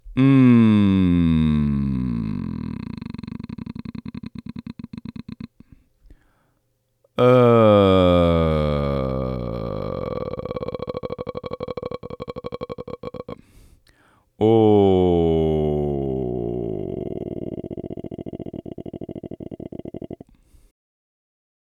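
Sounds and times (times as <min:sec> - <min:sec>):
voice transitioning into vocal fry pulse register: 0:00.0 - 0:05.8, 0:07.2 - 0:13.6, 0:14.4 - 0:20.6.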